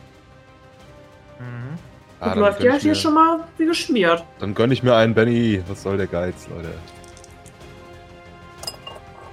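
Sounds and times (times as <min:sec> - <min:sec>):
speech: 0:01.4 - 0:07.0
four-sided die and wild die clattering across a hard tabletop: 0:06.9 - 0:07.6.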